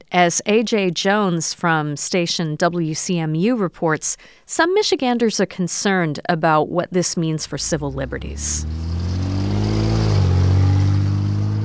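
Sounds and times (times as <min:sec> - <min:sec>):
speech: 0:00.1 - 0:08.9
steady road noise at a busy intersection: 0:07.4 - 0:11.6
vehicle engine droning as it passes through a busy intersection: 0:07.5 - 0:11.6.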